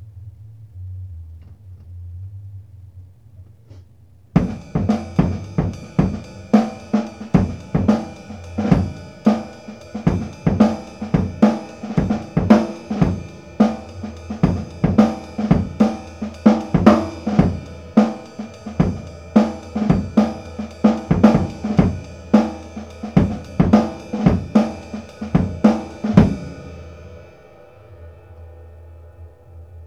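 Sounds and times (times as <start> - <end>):
acoustic funk ride cymbal beat: 4.4 - 28.1.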